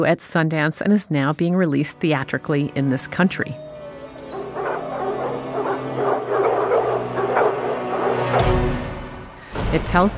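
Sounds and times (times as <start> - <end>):
speech: 0.0 - 3.6, 9.7 - 10.1
dogs barking and yipping: 3.5 - 8.6.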